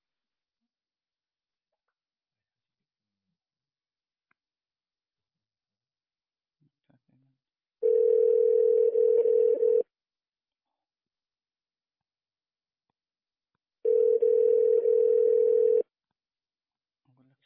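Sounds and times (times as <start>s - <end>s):
telephone dial tone before a call: 7.8s - 9.8s, 13.9s - 15.8s.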